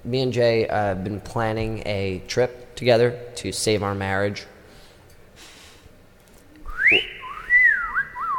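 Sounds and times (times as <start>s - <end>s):
speech: 0.0s - 4.5s
person whistling a tune: 6.7s - 8.3s.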